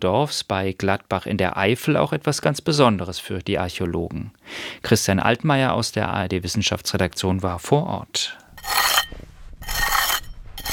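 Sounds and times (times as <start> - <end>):
speech: 0.0 - 8.8
trowel scraping the earth walls of an excavation pit at a Celtic farming village dig: 8.5 - 10.7.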